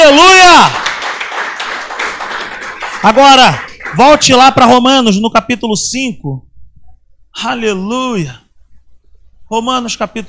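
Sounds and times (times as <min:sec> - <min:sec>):
crowd applauding: 0:00.0 - 0:04.7
speech: 0:03.0 - 0:06.5, 0:07.4 - 0:08.4, 0:09.5 - 0:10.2.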